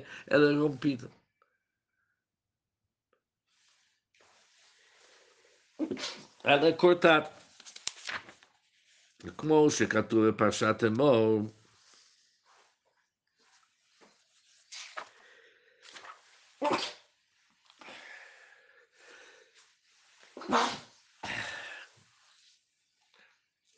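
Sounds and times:
speech: 0.0 - 1.2, 5.8 - 7.4, 9.2 - 11.6
person sneezing: 5.8 - 6.4, 16.6 - 17.1, 20.4 - 21.8.

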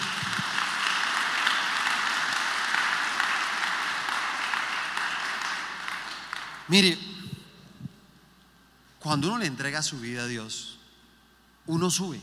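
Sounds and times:
crowd applauding: 0.0 - 6.8
speech: 6.7 - 7.1, 9.0 - 10.7, 11.7 - 12.2.

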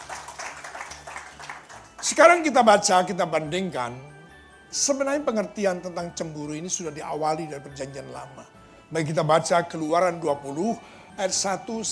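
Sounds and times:
audience applauding: 0.0 - 2.2
speech: 2.0 - 4.1, 4.7 - 11.8.

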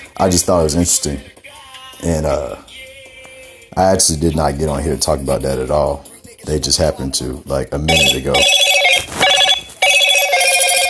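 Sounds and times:
speech: 0.2 - 1.4, 2.0 - 2.7, 3.8 - 8.7
loud phone notification alert: 7.9 - 10.8.

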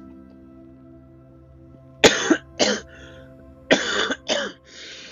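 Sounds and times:
person with an upset stomach coughing: 2.1 - 2.9, 3.7 - 4.6.

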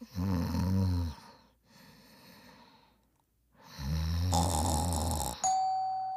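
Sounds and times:
person snoring heavily: 0.0 - 1.4, 3.6 - 5.5
quiet breathing: 1.1 - 4.1
doorbell ringing with a bright sustained electronic chime: 5.4 - 6.1.

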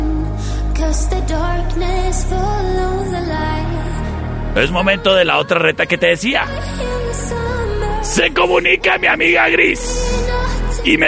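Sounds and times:
song with sung vocal melody over thick sustained instrumental backing: 0.0 - 11.0
speech: 0.9 - 7.3, 8.0 - 11.0.

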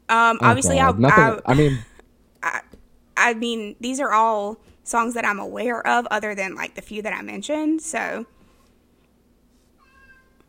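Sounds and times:
speech: 0.1 - 1.9, 3.2 - 8.4
cat crying and meowing in a sobbing way: 9.8 - 10.4.

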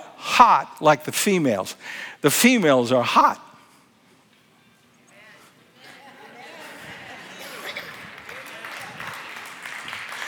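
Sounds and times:
speech: 0.4 - 3.5
laughter: 5.8 - 9.2
audience clapping: 6.9 - 10.2.

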